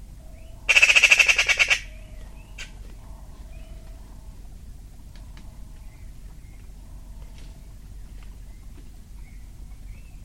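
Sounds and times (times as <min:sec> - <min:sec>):
bird rattling pi pi pi pi call: 0:00.7 - 0:03.9.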